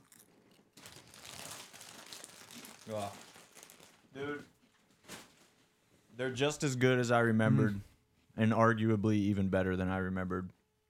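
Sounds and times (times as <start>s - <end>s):
crunchy chips being chewed: 0.0s - 4.0s
speech: 2.9s - 3.3s, 4.2s - 4.6s, 6.2s - 10.6s.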